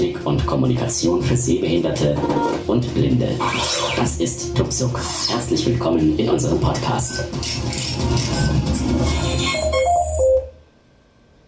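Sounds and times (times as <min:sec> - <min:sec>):
speech: 0:00.2 - 0:09.7
phone ringtone with layered electronic music: 0:07.0 - 0:10.6.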